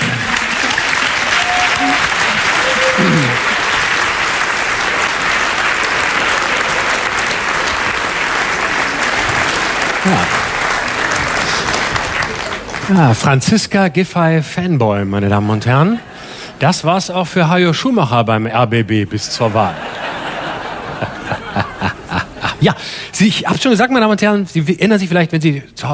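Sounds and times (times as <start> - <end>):
laughter: 0.0 - 11.7, 19.3 - 22.8
large audience applauding: 0.0 - 13.4
faint voices and whoops from an audience: 1.3 - 3.7
speech: 10.0 - 10.4, 12.9 - 19.8, 22.6 - 25.9.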